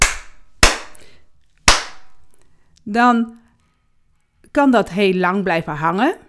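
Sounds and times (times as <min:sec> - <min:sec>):
sharp hand claps with reverberation in a room: 0:00.0 - 0:01.0, 0:01.7 - 0:02.1
speech: 0:02.8 - 0:03.4, 0:04.5 - 0:06.2.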